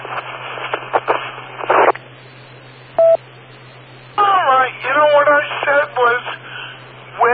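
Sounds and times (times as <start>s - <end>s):
crackly band-limited phone-line static: 0.0s - 7.3s
telephone keypad tone: 3.0s - 3.2s.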